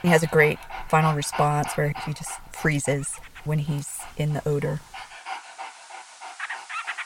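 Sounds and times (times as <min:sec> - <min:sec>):
speech: 0:00.0 - 0:05.1
ecological detector dog panting in Hawaii: 0:00.0 - 0:07.0.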